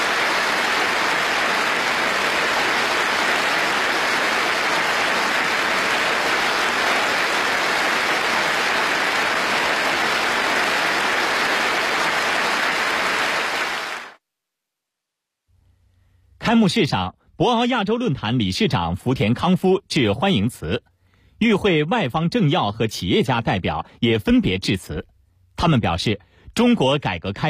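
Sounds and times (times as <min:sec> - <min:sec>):
warm audience applause during a speech at an opening ceremony: 0:00.0 - 0:14.2
speech: 0:16.5 - 0:27.4.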